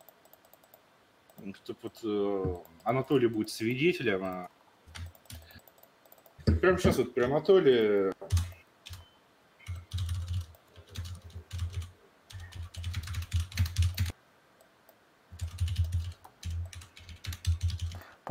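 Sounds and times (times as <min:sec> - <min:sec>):
speech: 0:01.4 - 0:04.6, 0:06.6 - 0:08.1
computer keyboard typing: 0:04.9 - 0:06.4, 0:08.3 - 0:09.0, 0:09.6 - 0:14.2, 0:15.3 - 0:18.0.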